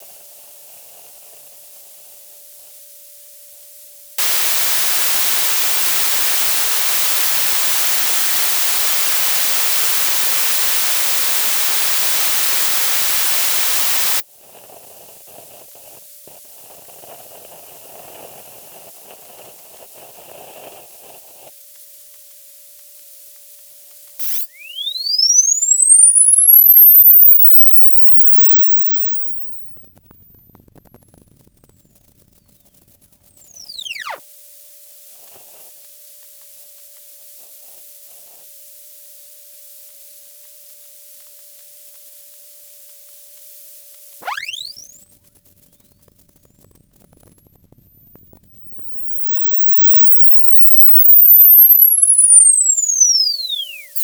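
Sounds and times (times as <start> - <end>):
pool test signal recorded by hydrophone: 4.2 - 14.2, 24.2 - 29.0, 33.5 - 34.2, 44.2 - 45.0, 49.4 - 54.0.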